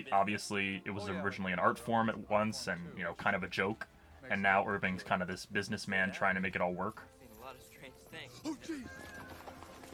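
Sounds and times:
speech: 0:00.0 - 0:09.3
horses galloping with clattering hooves: 0:08.8 - 0:09.9.

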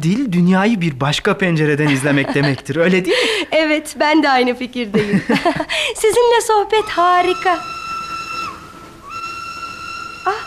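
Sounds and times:
speech: 0:00.0 - 0:07.8
laughter: 0:01.8 - 0:03.5, 0:05.0 - 0:05.8
loud steam train whistle as train arrives: 0:06.9 - 0:10.4.

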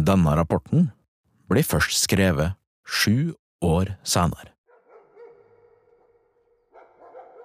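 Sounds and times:
speech: 0:00.0 - 0:04.5
police tracking dog barking: 0:04.7 - 0:07.4.

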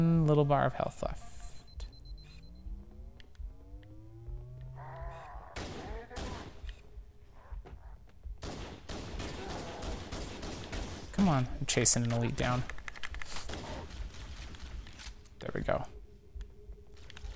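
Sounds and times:
speech: 0:00.0 - 0:01.3, 0:11.3 - 0:12.8
gunfire in a shooter video game with rockets: 0:05.6 - 0:06.8, 0:08.4 - 0:11.4, 0:13.3 - 0:15.0.

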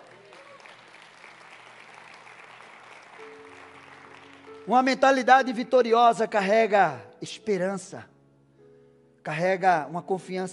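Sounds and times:
congregation applauding: 0:00.0 - 0:05.8
speech: 0:04.6 - 0:08.1, 0:09.2 - 0:10.5.

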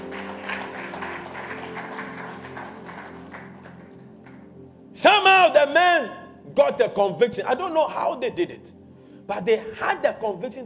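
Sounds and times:
audience clapping: 0:00.0 - 0:04.5
speech: 0:05.0 - 0:10.6.

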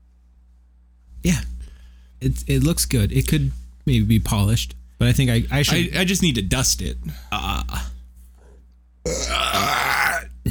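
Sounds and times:
speech: 0:01.2 - 0:01.5, 0:02.2 - 0:07.8
loud drawn-out exaggerated gravelly burp: 0:09.1 - 0:10.4.

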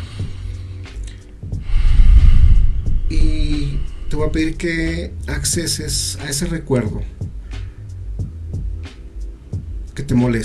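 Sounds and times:
deep slow inhale and exhale: 0:00.0 - 0:04.3, 0:07.4 - 0:08.0
speech: 0:04.2 - 0:07.2, 0:10.1 - 0:10.4.

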